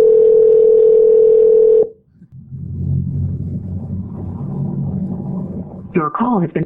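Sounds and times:
outgoing phone call electronic ring tone: 0:00.0 - 0:02.0
low rumble of open line noise: 0:00.0 - 0:06.6
speech: 0:06.0 - 0:06.6.

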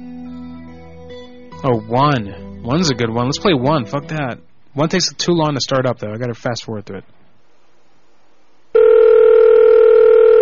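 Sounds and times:
speech: 0:01.6 - 0:07.2
steady electronic telephone ringing tone on the line: 0:08.8 - 0:10.4.

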